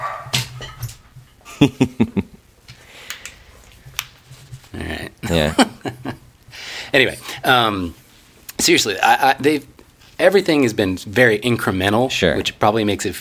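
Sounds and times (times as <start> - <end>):
dog barking and yipping: 0.0 - 1.2
laughter: 1.4 - 3.3, 4.7 - 8.0
speech: 1.6 - 1.9, 5.3 - 5.7, 7.0 - 8.0, 8.7 - 13.1.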